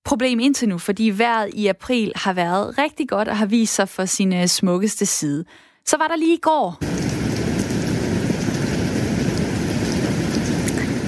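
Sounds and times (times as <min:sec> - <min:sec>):
speech: 0:00.1 - 0:07.1
steady rain: 0:06.8 - 0:11.0
water dripping: 0:06.8 - 0:11.0.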